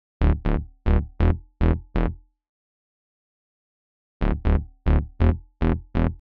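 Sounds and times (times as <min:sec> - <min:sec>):
simple bass: 0:00.2 - 0:02.2, 0:04.2 - 0:06.2.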